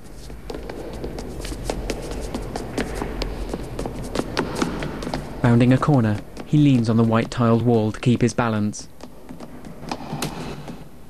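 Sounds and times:
low steady hum: 0:00.0 - 0:11.0
many quick footsteps hurrying down a broad flight of steps: 0:00.0 - 0:11.0
speech: 0:05.4 - 0:08.9.

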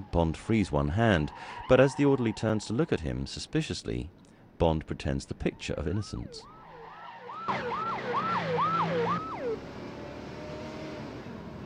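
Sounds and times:
speech: 0:00.1 - 0:06.5
ambulance siren wailing as the vehicle speeds up a winding road: 0:05.6 - 0:09.7
low ambulance engine drone: 0:06.6 - 0:11.6.

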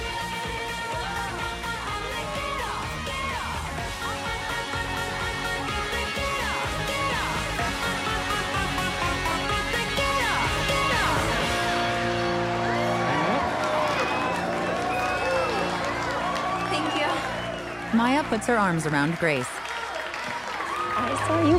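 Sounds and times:
woman singing live: 0:00.0 - 0:11.5
loud steady live music: 0:00.0 - 0:19.6
concert crowd yelling and cheering: 0:00.0 - 0:21.5
man playing guitar: 0:10.3 - 0:14.7
speech: 0:18.0 - 0:19.6.

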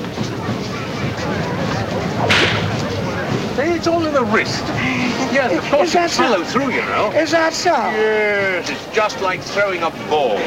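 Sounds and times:
murmur: 0:00.0 - 0:10.4
whip crack: 0:02.3 - 0:02.9
speech: 0:03.6 - 0:10.4.

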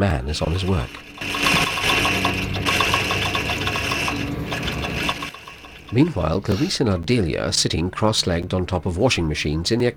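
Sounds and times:
speech: 0:00.0 - 0:01.5, 0:05.9 - 0:09.9
sewing machine stitching supple material: 0:00.4 - 0:06.6
sewing machine needle ticking: 0:00.4 - 0:06.9.

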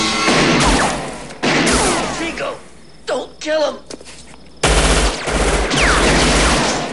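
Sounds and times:
gunfire exchanged in a shootout between two gunmen: 0:00.2 - 0:02.3, 0:04.6 - 0:06.9.

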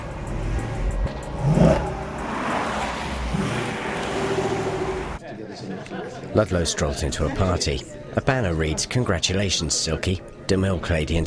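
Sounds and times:
Viper sports car engine rumble driving into a car park: 0:00.0 - 0:05.2
speech: 0:06.4 - 0:11.2.

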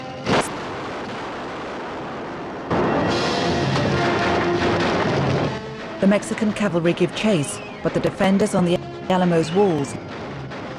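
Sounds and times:
burning hut exploding: 0:00.1 - 0:05.9
speech: 0:06.0 - 0:10.3.

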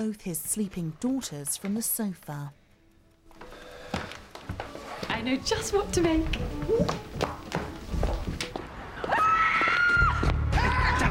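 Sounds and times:
speech: 0:00.0 - 0:02.6, 0:05.2 - 0:07.4
footsteps pattering at night: 0:00.0 - 0:10.4
woman screaming: 0:09.1 - 0:11.0.

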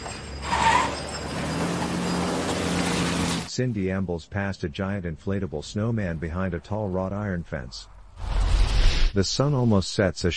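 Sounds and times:
car driving off quickly: 0:00.0 - 0:03.5
speech: 0:03.6 - 0:08.3, 0:09.2 - 0:10.3.

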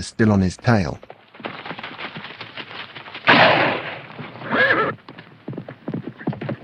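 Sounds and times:
speech: 0:00.0 - 0:01.1
horse galloping with a rider fleeing: 0:00.5 - 0:06.6
gunshot fired by a rider into the darkness: 0:03.2 - 0:04.2.

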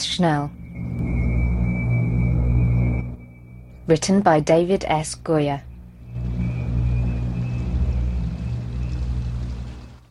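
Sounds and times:
deep low rumble: 0:00.0 - 0:10.0
speech: 0:00.2 - 0:01.2, 0:03.9 - 0:05.7
water flowing along a city street gutter at night: 0:06.2 - 0:10.0.

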